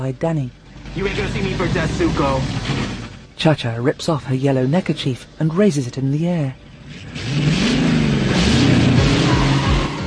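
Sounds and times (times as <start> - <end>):
speech: 0.0 - 2.8, 3.4 - 7.5
two racing car engines revving and accelerating: 0.0 - 10.0.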